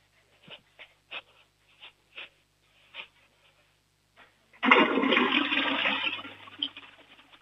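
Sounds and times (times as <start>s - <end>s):
toilet flushing: 4.6s - 7.3s.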